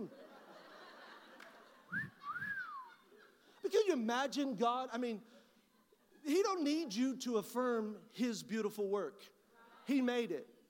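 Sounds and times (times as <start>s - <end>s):
speech: 0.0s - 0.3s, 3.9s - 5.4s, 6.2s - 10.6s
laughter: 0.0s - 4.5s
two-note catcall whistle from an audience member: 1.9s - 2.9s.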